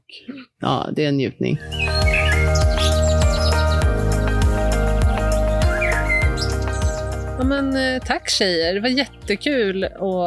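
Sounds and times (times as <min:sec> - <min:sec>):
speech: 0:00.1 - 0:02.1, 0:07.5 - 0:10.2
birds chirping and tweeting in a kitchen garden: 0:01.6 - 0:09.5.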